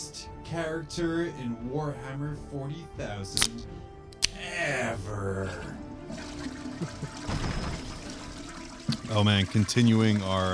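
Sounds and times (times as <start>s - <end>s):
speech: 0.5s - 3.9s, 4.6s - 6.2s, 6.8s - 7.3s, 9.1s - 10.5s
toilet flushing: 5.4s - 10.5s.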